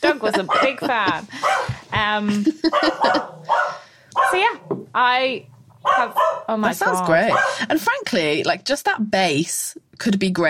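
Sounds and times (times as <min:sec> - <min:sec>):
speech: 0:00.0 - 0:03.3, 0:04.3 - 0:10.4
laughter: 0:00.0 - 0:03.5
dog barking and yipping: 0:00.3 - 0:01.7, 0:02.7 - 0:04.5, 0:05.8 - 0:07.6.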